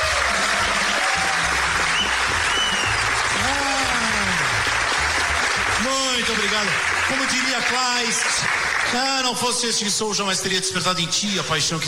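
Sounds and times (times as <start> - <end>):
crowd cheers: 0.0 - 9.3
large crowd clapping: 0.0 - 10.4
crowd whistles: 1.9 - 3.2
speech: 6.3 - 11.8.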